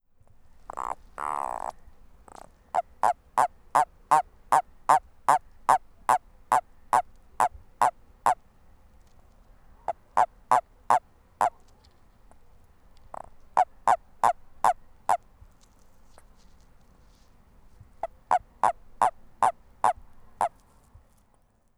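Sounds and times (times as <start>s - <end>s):
spiny toad Bufo spinosus calling: 0.4s - 8.4s, 9.8s - 15.3s, 17.8s - 20.6s.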